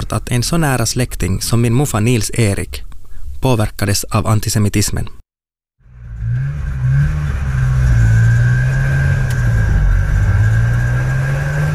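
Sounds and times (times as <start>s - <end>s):
speech: 0.1s - 5.2s
motorcycle with sidecar engine rumbling and revving: 5.8s - 11.7s.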